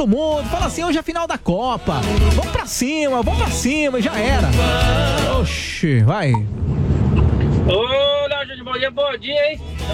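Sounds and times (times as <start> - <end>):
speech: 0.0 - 8.0, 8.8 - 9.9
low rumbling road noise: 0.5 - 9.9
big car engine revving with a rising whining pitch in Sumaré: 6.4 - 8.9.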